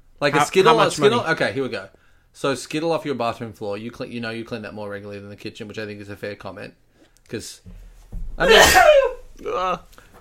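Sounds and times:
speech: 0.2 - 7.8, 8.4 - 10.0
sneeze: 8.4 - 9.2.

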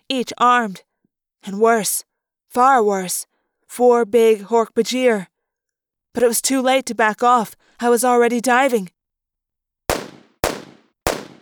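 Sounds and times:
speech: 0.1 - 5.3, 6.1 - 9.0
bullets whizzing past: 9.9 - 11.4
gunshots: 9.9 - 11.4.

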